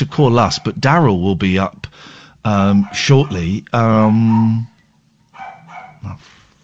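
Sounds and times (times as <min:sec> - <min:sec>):
speech: 0:00.0 - 0:04.7, 0:06.0 - 0:06.4
dog barking: 0:02.8 - 0:03.5, 0:04.1 - 0:04.6, 0:05.3 - 0:06.1.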